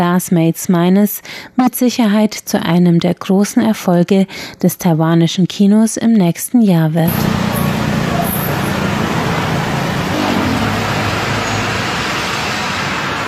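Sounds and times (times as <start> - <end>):
speech: 0.0 - 7.4
traffic on a busy evening street in Thailand: 7.1 - 13.2.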